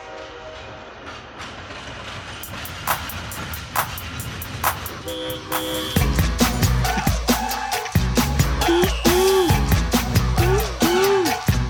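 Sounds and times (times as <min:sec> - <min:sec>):
train horn: 0:00.0 - 0:00.9, 0:05.0 - 0:06.2
train rumbling while pulling into the station: 0:00.0 - 0:11.6
train wheels clacking: 0:00.0 - 0:11.6.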